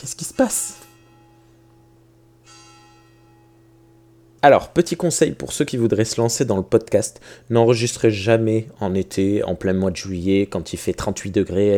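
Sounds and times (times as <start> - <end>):
speech: 0.0 - 0.9, 4.4 - 11.7
church bells ringing from nearby bell tower: 0.2 - 3.8.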